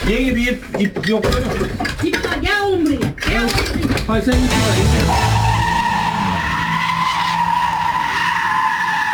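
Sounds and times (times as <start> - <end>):
speech: 0.1 - 5.4
car tires screeching while drifting and skidding in Gaziemir, Izmir: 4.3 - 9.1.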